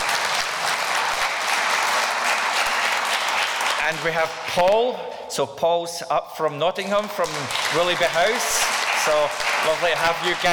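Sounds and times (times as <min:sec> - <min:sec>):
audience applause: 0:00.0 - 0:04.4, 0:07.1 - 0:10.5
speech: 0:03.9 - 0:10.5.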